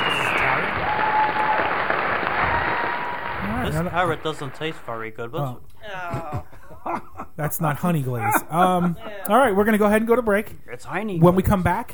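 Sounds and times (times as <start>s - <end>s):
audience applauding: 0.0s - 5.1s
speech: 3.8s - 11.9s.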